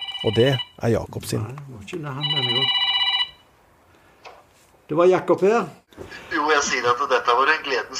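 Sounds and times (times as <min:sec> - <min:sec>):
telephone ringing with a bright electronic tone: 0:00.0 - 0:00.9, 0:02.2 - 0:03.5
speech: 0:00.2 - 0:02.8, 0:04.9 - 0:07.9.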